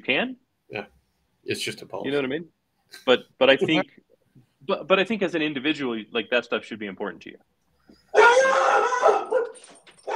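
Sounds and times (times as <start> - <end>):
speech: 0.0 - 4.0, 4.6 - 10.1
dog barking in howl-like cry: 8.1 - 10.1.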